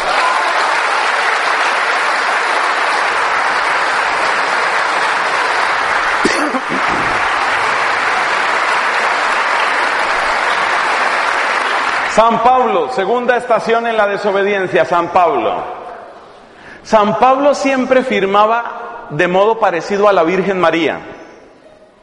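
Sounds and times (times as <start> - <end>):
large group applauding: 0.0 - 14.2
speech: 12.2 - 15.8, 16.8 - 21.2.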